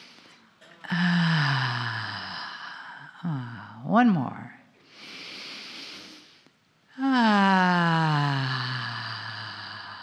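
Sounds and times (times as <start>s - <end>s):
deep breath in through the nose and out through the mouth: 0.0s - 3.8s, 4.8s - 10.0s
speech: 3.9s - 4.5s.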